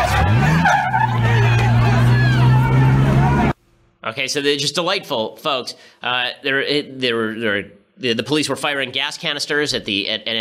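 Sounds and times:
crowd shouting and yelling at a man in a truck: 0:00.0 - 0:03.6
running vehicle engine: 0:00.0 - 0:03.6
speech: 0:04.2 - 0:10.3.

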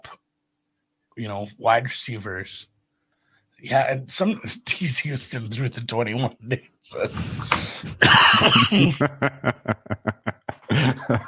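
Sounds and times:
speech: 0:01.2 - 0:02.7, 0:03.6 - 0:10.0, 0:10.7 - 0:11.2
laughter: 0:07.0 - 0:11.2
loud coughing fit: 0:07.1 - 0:09.1.

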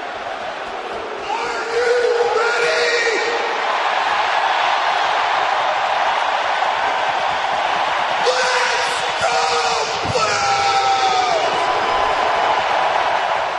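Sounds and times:
arena crowd roar: 0:00.0 - 0:13.5
man yelling through an arena microphone: 0:01.2 - 0:03.5, 0:08.2 - 0:11.8.

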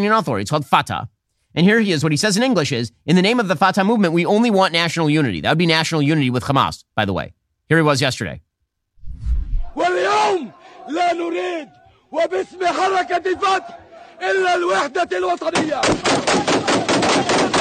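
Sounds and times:
speech: 0:00.0 - 0:08.4, 0:09.2 - 0:16.5
people shouting and chanting: 0:09.7 - 0:17.5
guns fired into the air: 0:15.6 - 0:17.5.

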